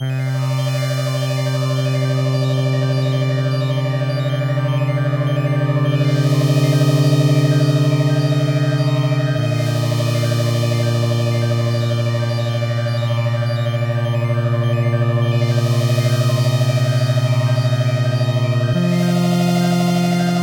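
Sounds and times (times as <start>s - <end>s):
saw and sine synth tones: 0.0s - 20.4s.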